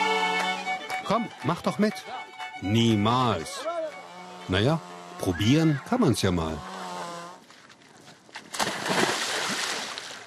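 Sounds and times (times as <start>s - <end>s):
speech: 1.1s - 3.7s, 4.5s - 6.7s
churning sloshing icy water: 7.1s - 10.2s
woman plunging into icy water with ice floes: 8.3s - 10.2s.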